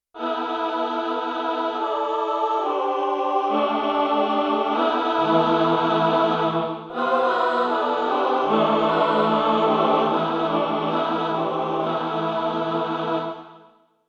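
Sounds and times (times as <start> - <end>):
choir singing a stack of fourths: 0.2 - 13.8.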